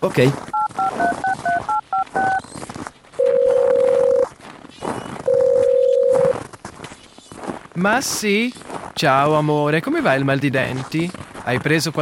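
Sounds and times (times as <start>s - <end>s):
speech: 0.0s - 1.1s, 7.8s - 12.0s
telephone keypad dialing beeps: 0.6s - 2.4s, 3.2s - 4.3s, 5.3s - 6.3s.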